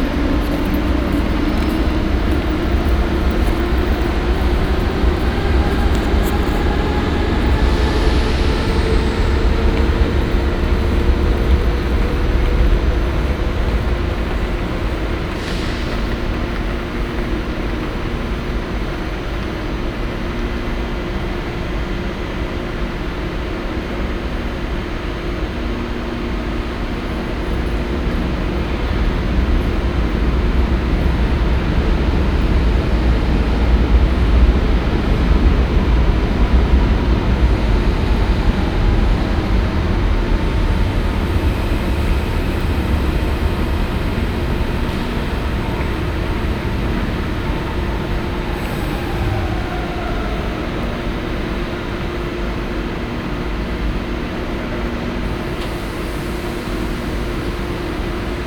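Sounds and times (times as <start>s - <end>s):
S-Bahn commuter train in Berlin: 0.0s - 58.4s.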